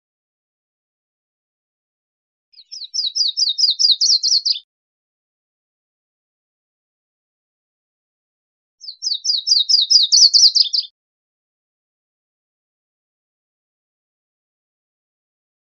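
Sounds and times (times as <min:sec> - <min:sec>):
Virginia's warbler singing high slurred down-swept notes: 0:02.6 - 0:04.6, 0:08.8 - 0:10.9.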